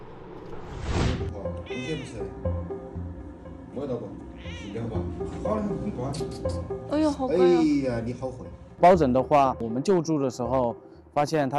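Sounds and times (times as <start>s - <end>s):
rescued ragdoll cat meowing: 1.6s - 2.3s, 4.4s - 5.0s
speech: 1.8s - 2.7s, 3.8s - 11.5s.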